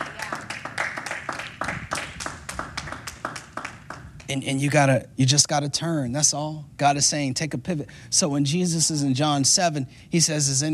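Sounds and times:
roomful of people applauding: 0:00.0 - 0:04.2
speech: 0:04.3 - 0:10.7.

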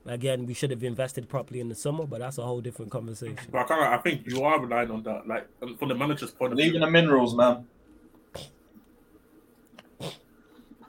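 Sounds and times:
speech: 0:00.1 - 0:08.6
person sneezing: 0:10.0 - 0:10.2.

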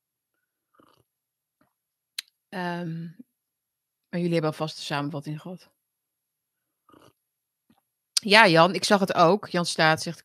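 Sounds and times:
short slurping swallow of a drink: 0:00.7 - 0:01.1, 0:06.8 - 0:07.2
speech: 0:02.5 - 0:03.3, 0:04.1 - 0:05.8, 0:08.2 - 0:10.2.

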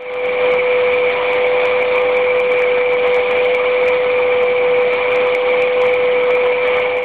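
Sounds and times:
vacuum cleaner running in the UAE: 0:00.0 - 0:07.0.

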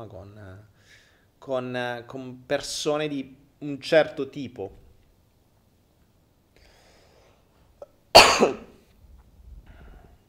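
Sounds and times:
speech: 0:00.0 - 0:04.8, 0:08.4 - 0:08.7
single loud harsh cough: 0:08.2 - 0:08.8.

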